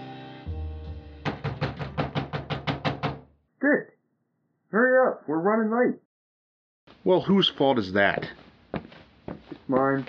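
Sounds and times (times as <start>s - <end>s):
knocking on a door: 1.2s - 3.3s
speech: 3.7s - 3.9s, 4.7s - 6.0s, 7.0s - 8.4s, 9.7s - 10.0s.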